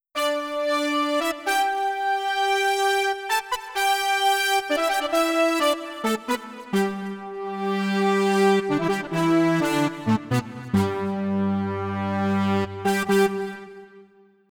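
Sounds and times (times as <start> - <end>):
synth brass: 0.2 - 14.2.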